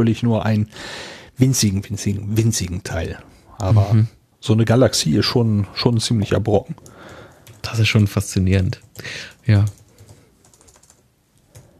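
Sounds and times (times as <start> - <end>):
speech: 0.0 - 9.8
low hiss: 0.0 - 11.7
faint typing on a computer keyboard: 6.8 - 11.7.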